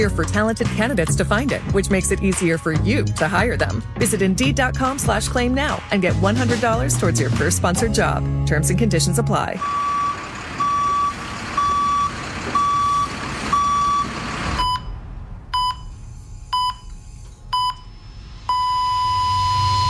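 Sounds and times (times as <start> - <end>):
speech: 0.0 - 9.9
vehicle reversing alarm beeping on a construction site: 9.5 - 19.8.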